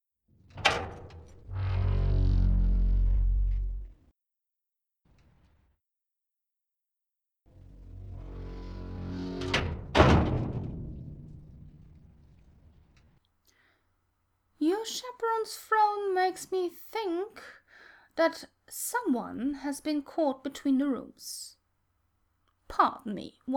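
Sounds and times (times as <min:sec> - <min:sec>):
heavy iron door with combination lock opening: 0:00.4 - 0:03.9, 0:07.6 - 0:12.1
speech: 0:14.8 - 0:17.6, 0:18.2 - 0:21.6, 0:22.7 - 0:23.5.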